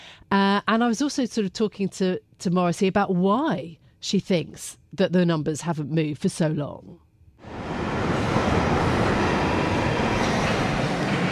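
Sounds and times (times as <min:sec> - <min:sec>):
speech: 0:00.3 - 0:07.0
London Underground Northern Line train rumbling along: 0:07.4 - 0:11.3.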